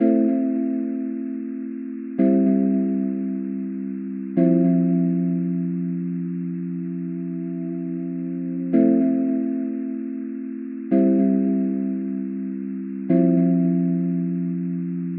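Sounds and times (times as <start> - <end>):
soft future bass synth chord loop in A minor: 0.0 - 15.1.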